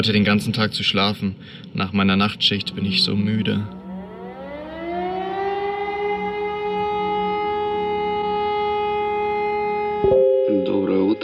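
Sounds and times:
speech: 0.0 - 3.8, 10.6 - 11.2
air raid siren wailing: 2.2 - 10.8.

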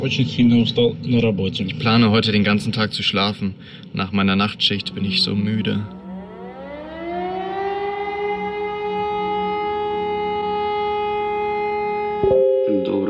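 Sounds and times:
speech: 0.0 - 6.0, 12.7 - 13.0
air raid siren wailing: 4.8 - 12.8.

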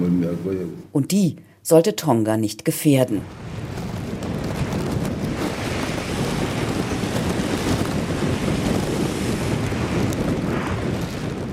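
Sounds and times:
speech: 0.0 - 3.6
waves crashing through volcanic rock blowholes: 3.2 - 11.5
wind buffeting the microphone: 3.2 - 11.5.

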